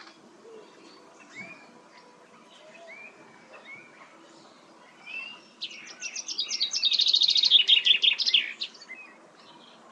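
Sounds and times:
Common chaffinch song: 0:00.0 - 0:09.9.

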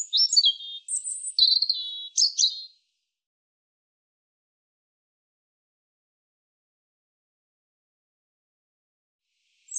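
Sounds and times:
European robin singing: 0:00.0 - 0:02.8.

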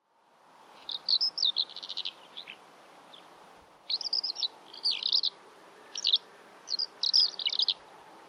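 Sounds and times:
soft steady hiss: 0:00.0 - 0:08.2
bird chirps: 0:00.8 - 0:03.3, 0:03.9 - 0:07.8.

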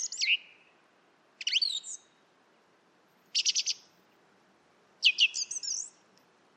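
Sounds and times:
song thrush singing: 0:00.0 - 0:02.3, 0:03.3 - 0:04.1, 0:05.0 - 0:06.2
faint background hiss: 0:00.0 - 0:06.5.

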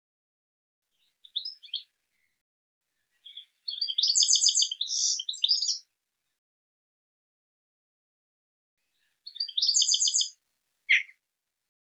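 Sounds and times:
bird giving high rapid chirping phrases: 0:01.0 - 0:01.9, 0:03.0 - 0:05.8, 0:09.0 - 0:11.1.

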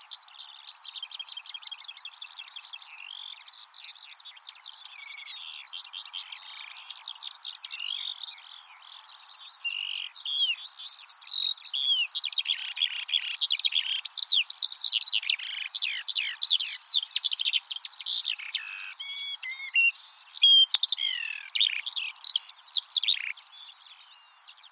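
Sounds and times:
Eurasian skylark singing a long warble: 0:04.3 - 0:23.8.

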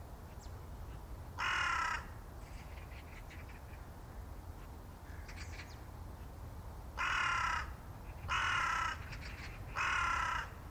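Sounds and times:
harsh raspy bird calls: 0:01.4 - 0:03.8, 0:07.0 - 0:10.6.

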